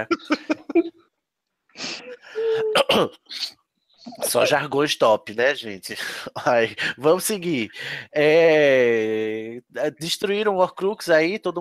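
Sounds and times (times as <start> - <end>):
speech: 0.0 - 0.6, 2.8 - 3.6, 4.2 - 11.5
short harsh coughs: 0.0 - 0.8, 1.8 - 3.2
laughter: 0.0 - 0.9
longer raspy strained throat clearing bursts: 2.5 - 3.2.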